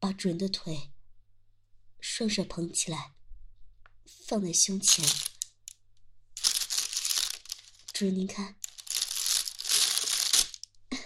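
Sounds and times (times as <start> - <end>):
speech: 0.0 - 0.9, 2.0 - 3.2, 4.1 - 5.3, 8.0 - 8.6
plastic bag crinkling: 4.9 - 5.5, 6.4 - 8.0, 8.6 - 10.7.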